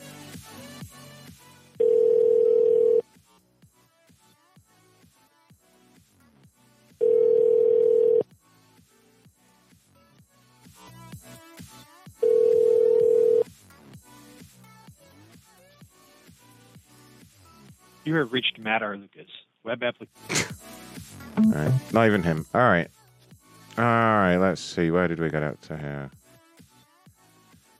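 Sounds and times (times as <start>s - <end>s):
ringback tone on an outgoing phone call: 1.8s - 3.0s, 7.0s - 8.2s, 12.2s - 13.4s, 21.4s - 21.8s
speech: 18.1s - 20.6s, 21.4s - 23.0s, 23.8s - 26.2s.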